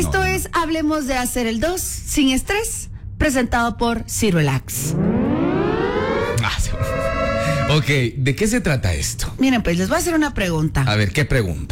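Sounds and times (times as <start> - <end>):
speech: 0.0 - 5.2, 7.7 - 11.7
ambulance siren wailing: 4.7 - 7.9.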